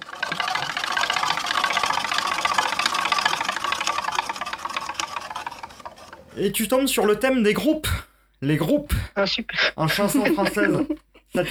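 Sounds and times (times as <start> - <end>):
game wheel spinning during a quiz game: 0.0 - 7.2
speech: 6.4 - 11.4
laughter: 8.6 - 11.4.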